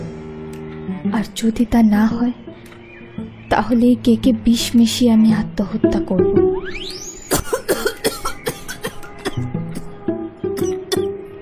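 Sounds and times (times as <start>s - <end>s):
speech: 1.0s - 2.4s, 3.5s - 7.4s
woman's violent fit of coughing: 7.3s - 9.9s.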